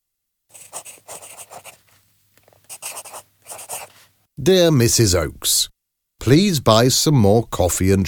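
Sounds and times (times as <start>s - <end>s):
pen or pencil scratching across paper while writing: 0.5s - 1.9s, 2.6s - 4.0s
speech: 4.4s - 8.0s.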